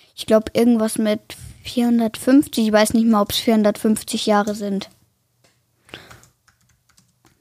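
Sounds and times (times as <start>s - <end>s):
speech: 0.2s - 5.0s
typing on a computer keyboard: 5.9s - 7.4s.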